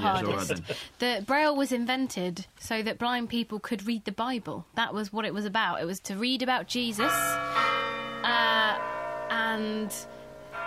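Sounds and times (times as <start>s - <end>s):
laughter: 0.0s - 0.8s
speech: 0.0s - 10.2s
church bells tolling: 7.0s - 10.6s.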